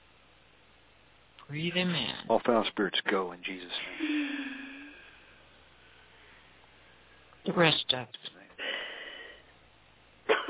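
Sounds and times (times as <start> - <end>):
faint hissy noise: 0.0 - 10.4
speech: 1.5 - 4.6, 7.6 - 8.3
sharp cough: 10.3 - 10.4.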